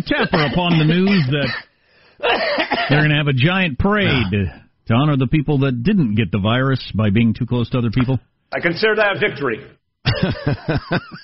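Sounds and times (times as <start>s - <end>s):
speech: 0.0s - 11.2s
fit of coughing mixed with laughter: 0.1s - 3.1s, 10.0s - 11.2s.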